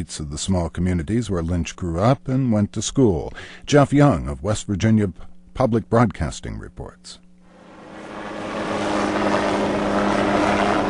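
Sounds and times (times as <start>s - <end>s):
speech: 0.0s - 7.2s
helicopter engine and rotors roaring while landing: 7.5s - 10.8s.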